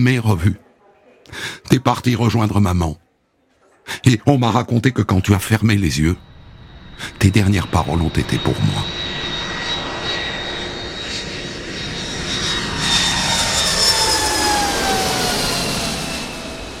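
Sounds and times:
speech: 0.0 - 0.6, 1.3 - 3.0, 3.9 - 6.3, 7.0 - 9.0
airplane engine roar from a plane arriving at an airport in winter: 5.8 - 16.7.

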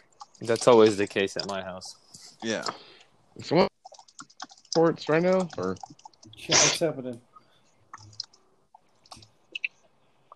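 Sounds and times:
keyboard typing: 0.1 - 2.8, 3.8 - 6.4, 7.9 - 8.4
speech: 0.4 - 3.7, 4.8 - 7.3.

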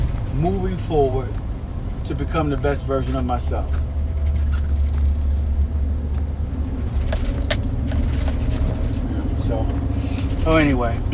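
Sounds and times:
car in motion heard from inside the cabin: 0.0 - 11.1
road noise: 0.0 - 11.1
speech: 0.4 - 1.4, 2.0 - 3.9, 10.4 - 11.1
brief jingling rattles: 6.8 - 9.4.

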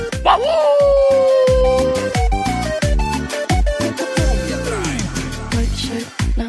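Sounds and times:
steady pulsing musical backing: 0.0 - 6.4
dog barking and yipping: 0.1 - 2.2
dog whining and whimpering: 0.1 - 2.3, 4.0 - 4.5.

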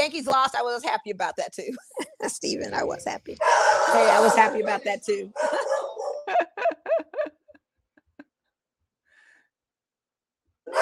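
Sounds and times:
speech: 0.0 - 6.5
dog barking: 3.4 - 4.7, 5.3 - 6.4, 10.7 - 10.8
laughter: 5.4 - 8.3.

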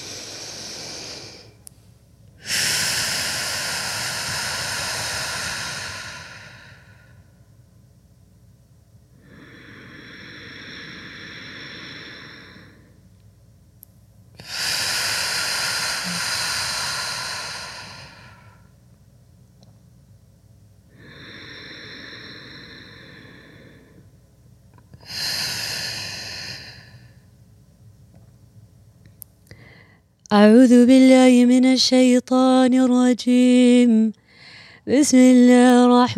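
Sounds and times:
deep belly breathing in a guided relaxation exercise: 0.0 - 1.7, 2.4 - 7.4, 9.2 - 13.0, 14.4 - 18.7, 20.9 - 24.2, 25.0 - 27.3, 29.5 - 30.1, 34.2 - 34.9
speech: 30.3 - 34.2, 34.9 - 36.1.

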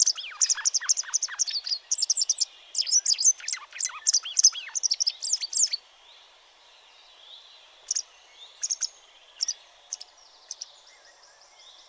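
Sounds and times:
pied wagtail twittering: 0.0 - 5.8.

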